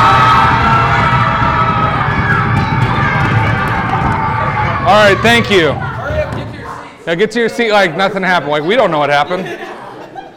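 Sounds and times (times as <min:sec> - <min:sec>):
group of people screaming and shouting: 0:00.0 - 0:06.2
thumping and banging on wall: 0:00.0 - 0:06.9
speech: 0:04.9 - 0:05.8, 0:07.1 - 0:09.8
laughter: 0:07.9 - 0:10.3.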